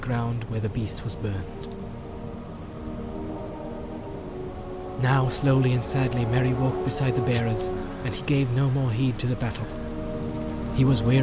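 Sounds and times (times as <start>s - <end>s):
heavy rain falling: 0.0s - 11.2s
speech: 0.1s - 1.8s, 5.0s - 9.8s, 10.8s - 11.2s.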